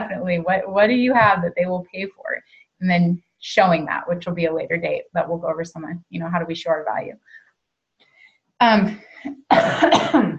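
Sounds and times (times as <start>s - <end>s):
speech: 0.3s - 7.4s, 8.6s - 10.3s
person coughing from allergy: 9.5s - 10.3s.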